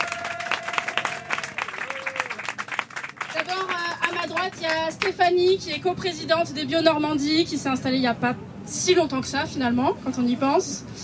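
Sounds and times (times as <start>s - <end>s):
audience applauding with many hands clapping: 0.0s - 5.1s
speech: 3.4s - 11.0s.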